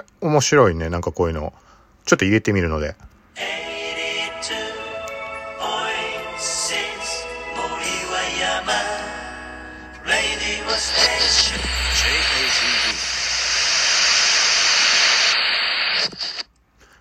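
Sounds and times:
speech: 0:00.0 - 0:03.6
anime opening background music with bright layered tones: 0:03.4 - 0:14.0
loud sustained hissing wash: 0:10.8 - 0:16.3.

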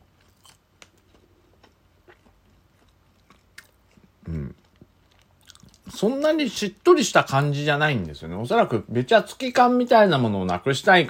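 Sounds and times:
person biting and chewing a shrimp cutlet sandwich with cabbage: 0:00.0 - 0:06.0
speech: 0:06.0 - 0:11.0.

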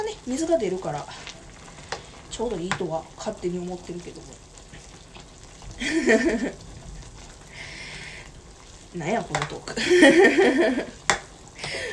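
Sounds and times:
speech: 0:00.0 - 0:01.4, 0:02.4 - 0:04.5, 0:05.8 - 0:06.7, 0:08.9 - 0:11.0
hot pot simmering on the stove: 0:00.0 - 0:11.9
laughter: 0:09.8 - 0:10.9.

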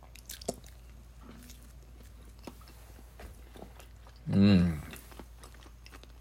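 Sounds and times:
wet chewing of a boiled egg: 0:00.0 - 0:06.2
person humming: 0:04.2 - 0:05.0.

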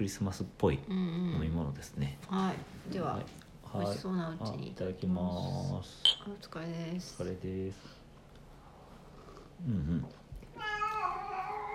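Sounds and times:
speech: 0:00.0 - 0:08.0, 0:09.6 - 0:10.2
cat meowing: 0:10.5 - 0:11.7.

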